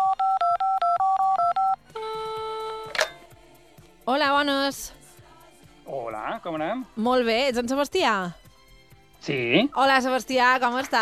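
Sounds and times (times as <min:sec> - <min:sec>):
telephone keypad tones as a number is dialed: 0:00.0 - 0:03.2
speech: 0:04.1 - 0:05.0, 0:05.9 - 0:08.4, 0:09.2 - 0:11.0.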